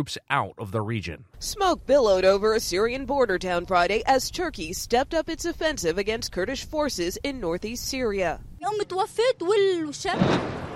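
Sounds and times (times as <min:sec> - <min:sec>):
speech: 0:00.0 - 0:10.6
loud explosion in a Syrian border town: 0:10.1 - 0:10.7.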